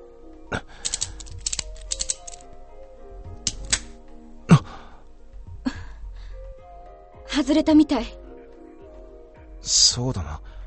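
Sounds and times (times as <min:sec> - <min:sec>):
speech: 0:00.5 - 0:00.9, 0:07.4 - 0:08.2, 0:09.7 - 0:10.5
key turning in a handcuff lock: 0:00.8 - 0:02.5, 0:03.5 - 0:03.9.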